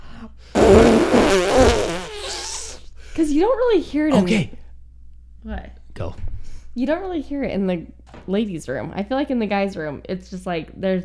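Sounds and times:
person imitating a loud fart with a buzzing raspberry: 0:00.6 - 0:02.8
speech: 0:03.3 - 0:04.6, 0:05.4 - 0:11.0.

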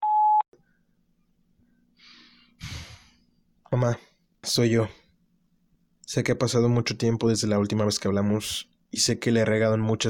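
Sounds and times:
answering machine beep: 0:00.0 - 0:00.4
speech: 0:03.7 - 0:05.0, 0:06.1 - 0:10.0.

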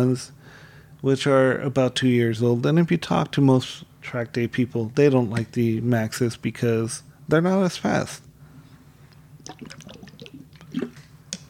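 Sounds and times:
speech: 0:00.0 - 0:08.2
person taking a swig of water: 0:09.4 - 0:11.4.

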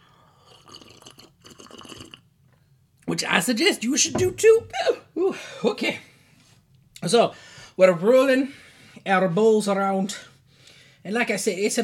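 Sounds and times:
sipping and slurping sherry from a glass: 0:00.4 - 0:02.2
speech: 0:03.1 - 0:06.1, 0:07.0 - 0:10.3, 0:11.0 - 0:11.8.

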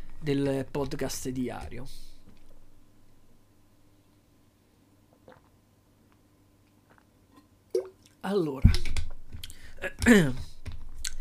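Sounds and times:
quiet steady hum: 0:00.0 - 0:11.1
speech: 0:00.2 - 0:02.1, 0:08.2 - 0:08.9, 0:09.8 - 0:10.5
person drinking water with swallowing and mouth sounds: 0:05.1 - 0:05.6.

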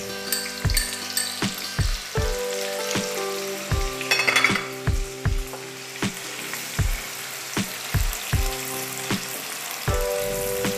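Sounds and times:
onions frying in hot oil: 0:00.0 - 0:10.7
utensil stirring against the pan: 0:00.1 - 0:01.8, 0:04.1 - 0:04.8.

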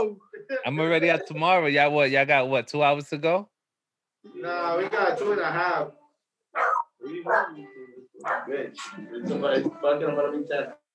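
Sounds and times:
speech: 0:00.0 - 0:03.5, 0:04.2 - 0:06.0, 0:06.6 - 0:10.8
dog barking and yipping: 0:06.6 - 0:07.5, 0:08.2 - 0:08.5.

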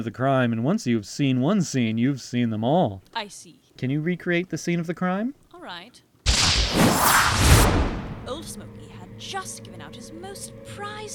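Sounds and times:
speech: 0:00.0 - 0:11.1
whip crack: 0:06.3 - 0:08.4.

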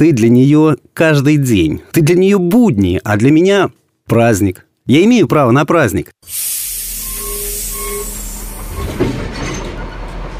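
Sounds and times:
speech: 0:00.0 - 0:06.7
train steam hissing: 0:06.2 - 0:09.2
short tonal squeals: 0:06.4 - 0:09.6
train cars clanking as train starts moving: 0:08.2 - 0:10.3.

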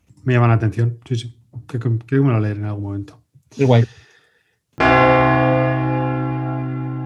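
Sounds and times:
speech: 0:00.2 - 0:04.0
church bell striking: 0:04.8 - 0:07.0.

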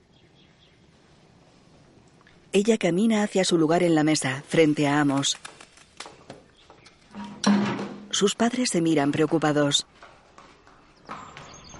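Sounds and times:
speech: 0:02.6 - 0:05.5, 0:08.2 - 0:10.1
horse hooves clip-clopping on a hard surface while led: 0:04.5 - 0:07.9, 0:09.0 - 0:11.7.

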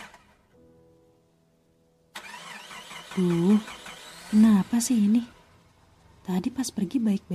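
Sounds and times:
car engine cranking and droning: 0:00.0 - 0:00.4, 0:02.1 - 0:06.7
speech: 0:03.2 - 0:05.4, 0:06.3 - 0:07.3.

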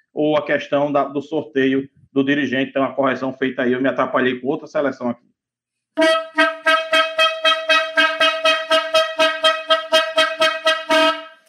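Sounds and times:
speech: 0:00.2 - 0:05.3, 0:06.0 - 0:06.5
long brassy horn blast: 0:06.0 - 0:11.4.

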